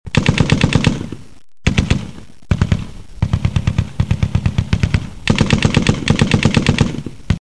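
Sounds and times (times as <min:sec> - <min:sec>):
machine gun firing: 0:00.1 - 0:07.3.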